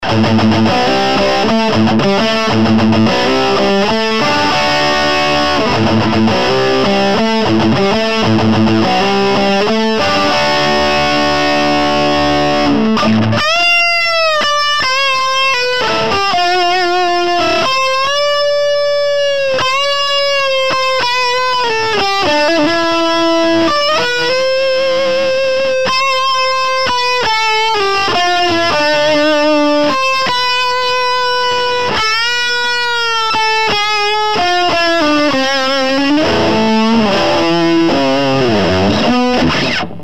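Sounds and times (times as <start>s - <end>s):
Sovtek amplifier lead hi guitar tone: 0.0s - 40.0s.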